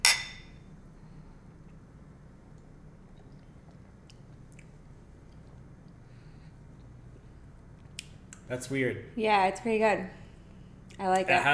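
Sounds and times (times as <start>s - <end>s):
glasses clinking in a toast: 0.0s - 0.6s
speech: 8.5s - 10.2s, 11.0s - 11.5s.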